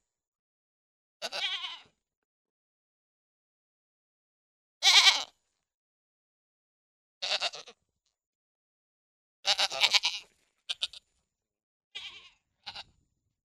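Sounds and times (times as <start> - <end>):
pygmy goat bleating: 1.2 - 1.9, 4.8 - 5.4, 7.2 - 7.8, 9.5 - 11.0, 12.0 - 12.9.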